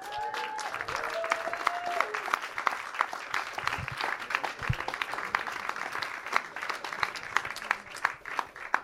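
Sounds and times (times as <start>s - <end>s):
person cheering: 0.0s - 2.3s
crowd applauding: 0.0s - 8.8s.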